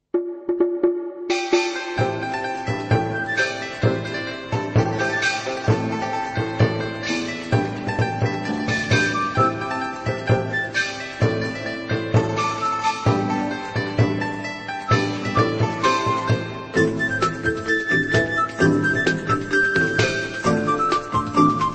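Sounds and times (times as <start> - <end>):
music: 0.0 - 21.7.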